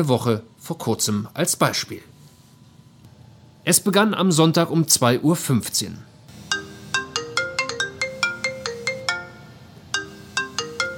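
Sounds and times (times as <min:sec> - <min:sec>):
speech: 0:00.0 - 0:02.1, 0:03.6 - 0:06.1
mobile phone ringtone with bright electronic tones: 0:06.5 - 0:10.9.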